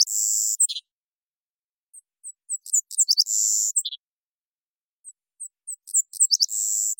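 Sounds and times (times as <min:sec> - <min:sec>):
Savannah sparrow Passerculus sandwichensis song in Washington: 0:00.0 - 0:01.0, 0:01.9 - 0:04.1, 0:05.0 - 0:06.9.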